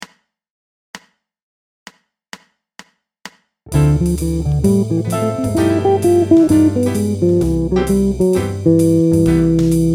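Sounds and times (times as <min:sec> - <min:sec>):
two-five-one guitar lick: 0:03.9 - 0:09.9.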